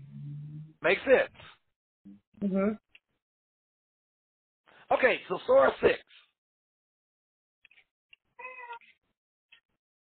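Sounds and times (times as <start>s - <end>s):
soft mouth sounds: 0.0s - 0.8s
speech: 0.8s - 2.8s, 4.9s - 6.2s
cat meowing: 8.4s - 8.8s.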